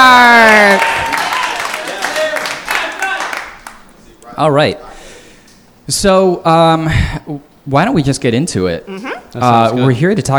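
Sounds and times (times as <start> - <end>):
live crowd applauding: 0.0 - 4.0
speech: 4.4 - 4.9, 5.9 - 10.3.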